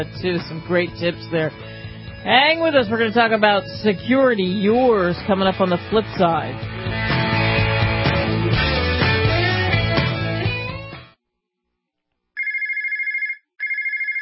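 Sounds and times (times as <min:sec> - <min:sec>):
speech: 0:00.0 - 0:06.7
music: 0:00.0 - 0:11.2
telephone with fast trilling electronic ring: 0:12.4 - 0:14.2.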